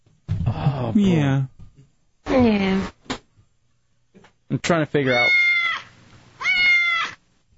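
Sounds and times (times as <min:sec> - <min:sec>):
speech: 0:00.9 - 0:01.5, 0:02.3 - 0:03.0, 0:04.5 - 0:05.4
cat meowing: 0:05.0 - 0:07.2.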